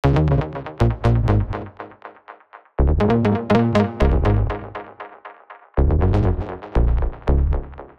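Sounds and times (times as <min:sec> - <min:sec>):
high funk analogue bass loop in C at 120 BPM: 0:00.0 - 0:01.9, 0:02.8 - 0:05.0, 0:05.8 - 0:07.9.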